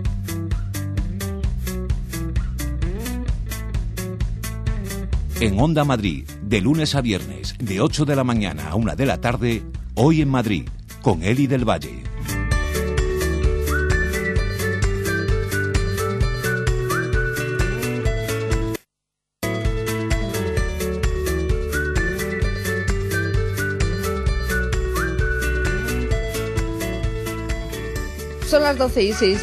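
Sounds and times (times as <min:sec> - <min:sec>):
loud full musical backing with a steady driving beat: 0:00.0 - 0:18.8, 0:19.4 - 0:29.4
speech: 0:05.4 - 0:12.1, 0:28.7 - 0:29.4
person whistling a melody: 0:13.4 - 0:18.1, 0:21.6 - 0:26.4.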